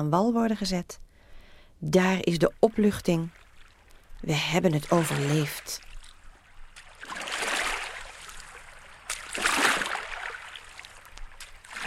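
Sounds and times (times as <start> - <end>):
speech: 0.0 - 1.0, 1.8 - 3.4, 4.2 - 5.9
faint water trickling: 0.4 - 11.8
water washing gently against the foot of a dike: 2.5 - 11.8.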